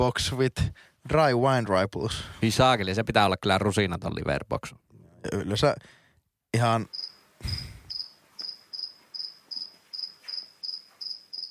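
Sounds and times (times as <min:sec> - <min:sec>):
speech: 0:00.0 - 0:07.7
cricket chirping: 0:06.9 - 0:11.4.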